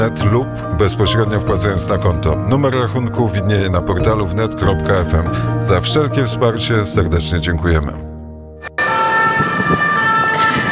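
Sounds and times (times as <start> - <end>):
speech: 0.0 - 8.1
siren wailing: 8.6 - 10.6.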